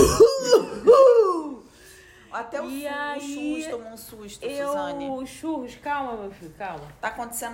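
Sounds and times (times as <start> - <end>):
voice imitating a choking cough during a breathing exercise: 0.0 - 0.9
speech: 2.4 - 7.5.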